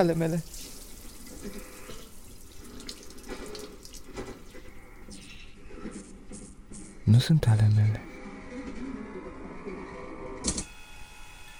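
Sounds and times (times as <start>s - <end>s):
speech: 0.0s - 0.6s, 7.1s - 8.1s
water drops trickling and splashing over skin: 0.0s - 5.1s.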